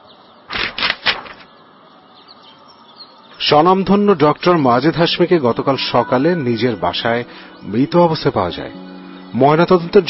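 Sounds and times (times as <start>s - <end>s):
newspaper pages rustling as the paper is handed over: 0.5s - 1.5s
speech: 3.4s - 10.0s.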